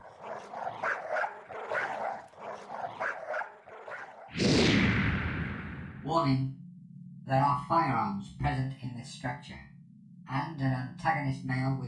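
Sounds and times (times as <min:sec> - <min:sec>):
dogs barking and growling fiercely: 0:00.0 - 0:04.4
harsh burst of noise: 0:04.3 - 0:06.1
speech: 0:06.1 - 0:06.6, 0:07.3 - 0:09.7, 0:10.3 - 0:11.8.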